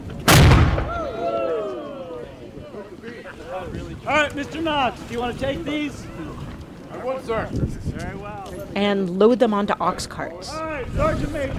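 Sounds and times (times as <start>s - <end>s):
historic cannon being test-fired by interpreters: 0.2s - 1.1s
speech: 4.1s - 6.3s, 7.0s - 11.5s.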